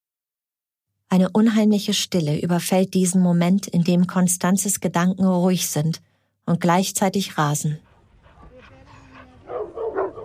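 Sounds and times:
speech: 0:01.1 - 0:07.9
dogs barking: 0:07.9 - 0:10.2.

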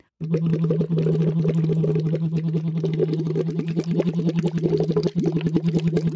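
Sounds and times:
bubbling through a tube into a half-filled vessel of water: 0:00.0 - 0:06.1.

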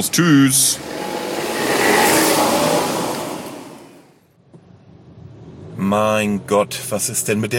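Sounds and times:
speech: 0:00.0 - 0:01.1, 0:05.9 - 0:07.5
car engine revving and accelerating away: 0:00.6 - 0:04.1.

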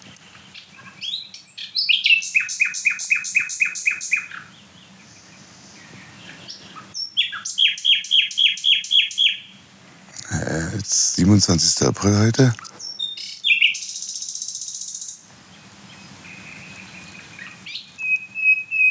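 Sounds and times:
nightingale singing rapid runs of sharp, ringing notes: 0:00.4 - 0:09.6, 0:12.6 - 0:18.8
speech: 0:11.3 - 0:12.7.

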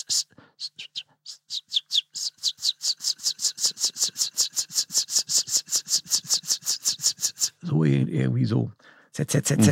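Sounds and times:
river warbler singing a whetting buzz: 0:00.8 - 0:07.6
speech: 0:07.8 - 0:09.7.

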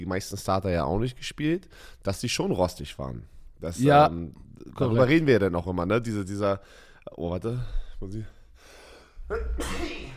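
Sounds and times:
speech: 0:00.0 - 0:08.4, 0:09.3 - 0:10.1
single sharp sneeze: 0:09.3 - 0:10.1.

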